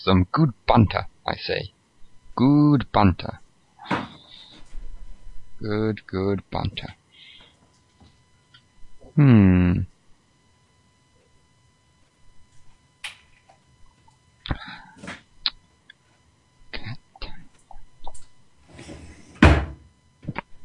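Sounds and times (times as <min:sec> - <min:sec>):
speech: 0:00.0 - 0:01.8, 0:02.4 - 0:04.1, 0:05.6 - 0:07.0, 0:09.2 - 0:09.9
doors slamming: 0:19.4 - 0:19.8.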